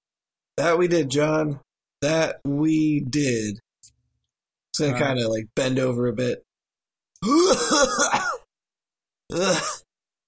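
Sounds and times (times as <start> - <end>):
speech: 0.6 - 3.6, 4.8 - 6.5, 7.2 - 8.3, 9.3 - 9.8
person imitating a cat coughing up a hairball: 9.3 - 9.7.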